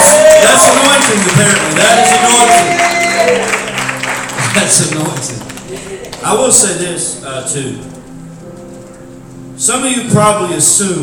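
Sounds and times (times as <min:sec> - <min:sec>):
audience clapping: 0:00.0 - 0:06.7
speech: 0:04.7 - 0:08.0, 0:09.6 - 0:11.0.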